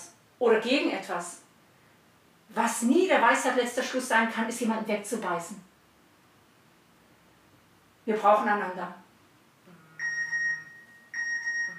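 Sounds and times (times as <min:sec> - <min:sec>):
speech: 0:00.4 - 0:01.4, 0:02.5 - 0:05.7, 0:08.0 - 0:09.0
old mobile phone ringtone chirping in short electronic bursts: 0:10.0 - 0:11.7.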